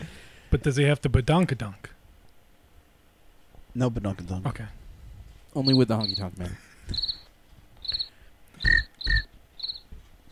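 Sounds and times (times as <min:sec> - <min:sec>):
speech: 0:00.5 - 0:01.9, 0:03.7 - 0:04.8, 0:05.5 - 0:07.2
person imitating cricket chirping: 0:05.6 - 0:06.3, 0:06.9 - 0:09.8.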